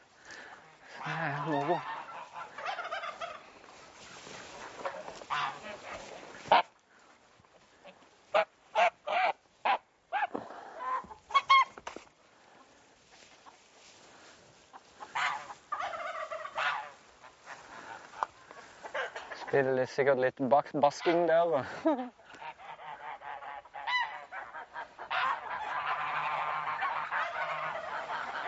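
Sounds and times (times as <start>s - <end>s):
flock of geese honking and cackling: 0.0s - 19.7s, 20.9s - 21.6s, 22.2s - 28.4s
speech: 1.5s - 1.9s, 19.6s - 22.2s.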